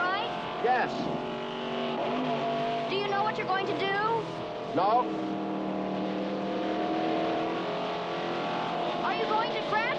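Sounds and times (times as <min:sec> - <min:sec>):
car engine revving as it accelerates through traffic: 0:00.0 - 0:09.9
speech: 0:00.6 - 0:01.3, 0:03.2 - 0:05.4.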